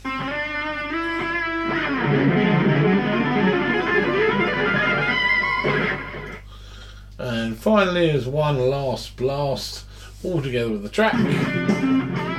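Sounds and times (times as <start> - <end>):
sustained guitar harmony part drenched in reverb and delay: 0.0 - 6.4, 11.2 - 12.3
speech: 7.6 - 12.3.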